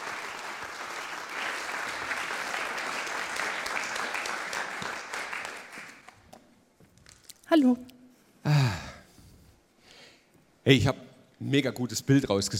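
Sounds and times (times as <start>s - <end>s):
crowd clapping: 0.0s - 6.4s
speech: 7.5s - 8.6s, 10.7s - 12.5s.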